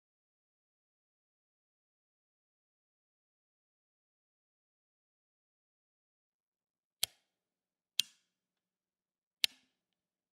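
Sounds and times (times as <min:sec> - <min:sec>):
lamp on off switch click: 0:08.0 - 0:08.2, 0:09.4 - 0:09.7.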